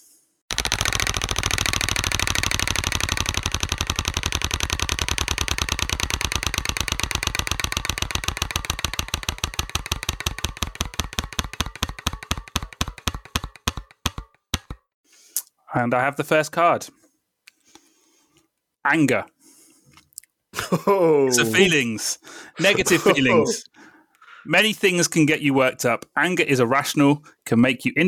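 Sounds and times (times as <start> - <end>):
prize wheel spinning and clicking: 0.5 - 13.8
speech: 15.8 - 17.0, 18.8 - 19.3, 20.7 - 23.7, 24.4 - 28.0
laughter: 20.6 - 23.7.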